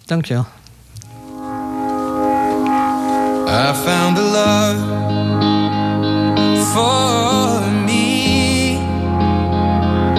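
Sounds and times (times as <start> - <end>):
speech: 0.1 - 0.6, 3.5 - 5.4, 6.6 - 7.7
recorded pop song with sustained instrumental tones: 2.6 - 10.1.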